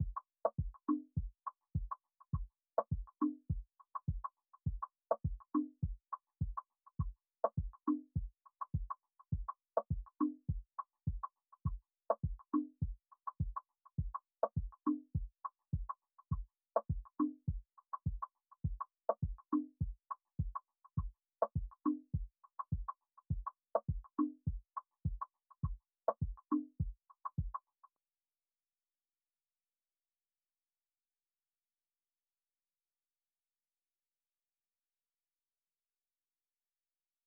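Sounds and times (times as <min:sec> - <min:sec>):
Afrobeats percussion loop in F# major: 0:00.0 - 0:27.8.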